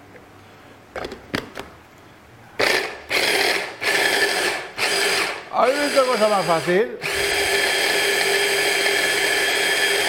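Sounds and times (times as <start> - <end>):
electric kitchen chopper motor whirring while mincing food: 2.6 - 10.0
speech: 5.9 - 7.0.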